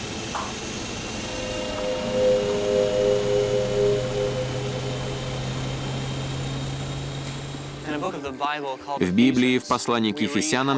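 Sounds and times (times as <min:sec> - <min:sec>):
propeller aircraft taking off from runway: 0:00.0 - 0:08.1
speech: 0:08.0 - 0:10.7.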